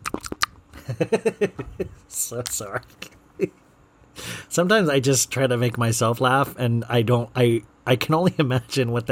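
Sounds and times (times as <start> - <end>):
crisp mouth clicks and bites: 0.0 - 0.6
wet chewing and crunching against the microphone: 0.0 - 0.6
speech: 1.0 - 3.6, 4.2 - 9.1.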